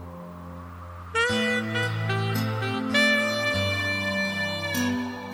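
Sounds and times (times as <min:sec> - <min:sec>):
saxophone: 0:01.1 - 0:05.3.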